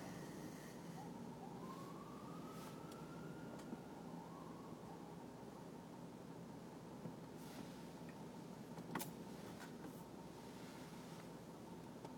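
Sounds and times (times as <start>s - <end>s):
fire department ambulance siren wailing: 0.0s - 5.6s
road traffic: 0.0s - 12.0s.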